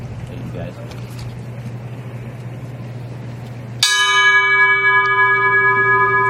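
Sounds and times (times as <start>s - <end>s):
bell tolling for people lost at sea: 3.8s - 6.2s.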